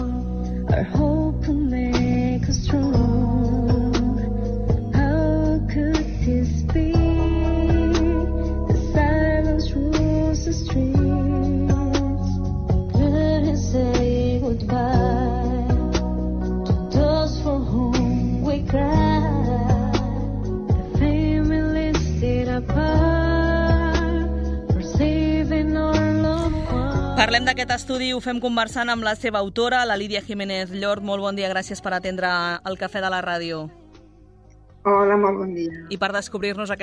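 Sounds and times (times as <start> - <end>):
pop ballad cover with sung vocal melody: 0.0 - 28.7
speech: 0.7 - 3.7, 27.2 - 33.8, 34.8 - 36.8.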